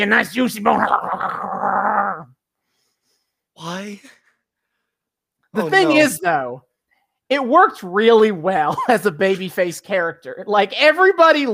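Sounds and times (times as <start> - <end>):
speech: 0.0 - 1.5, 3.6 - 4.2, 5.5 - 6.7, 7.3 - 11.5
person growling like a dog: 0.7 - 2.3.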